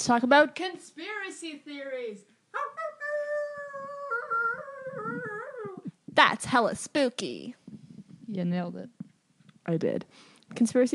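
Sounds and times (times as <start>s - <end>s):
speech: 0.0s - 3.2s, 6.2s - 7.6s, 8.3s - 9.0s, 9.7s - 10.9s
person imitating a howling dog: 2.6s - 5.9s.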